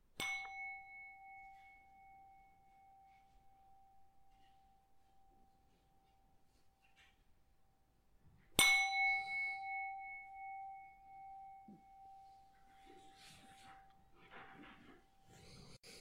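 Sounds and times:
meditation bell ringing: 0:00.2 - 0:07.0, 0:08.6 - 0:15.8
faint breathy sounds: 0:12.7 - 0:15.9.

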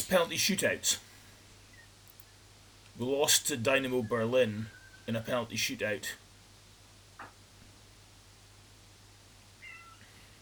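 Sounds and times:
steady low hum: 0:00.0 - 0:10.4
speech: 0:00.1 - 0:01.1, 0:03.0 - 0:06.2
cat meowing: 0:09.6 - 0:10.1.

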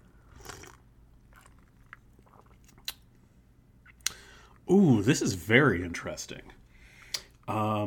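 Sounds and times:
slurping sip of a cocktail: 0:00.2 - 0:03.0
mouth and swallowing noises: 0:00.2 - 0:03.1
speech: 0:04.7 - 0:06.6, 0:07.5 - 0:07.8.

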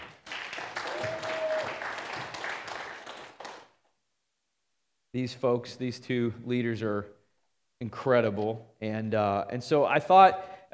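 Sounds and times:
audience round of applause: 0:00.0 - 0:03.7
speech: 0:05.2 - 0:07.2, 0:07.8 - 0:10.7.

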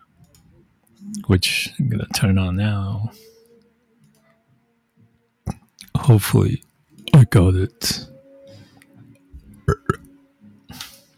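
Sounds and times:
speech: 0:01.0 - 0:03.3, 0:06.1 - 0:08.1
brief breathy hiss: 0:03.0 - 0:03.7
person burping after drinking carbonated yerba mate: 0:09.6 - 0:10.1.

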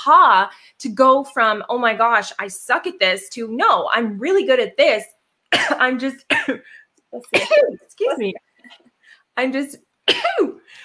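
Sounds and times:
speech: 0:00.0 - 0:10.8
stifled attempted sneeze: 0:07.2 - 0:07.9.

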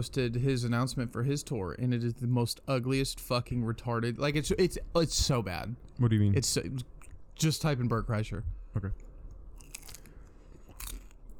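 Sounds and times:
speech: 0:00.0 - 0:09.0
munching and chewing on food with crunchy bites: 0:09.2 - 0:11.3.

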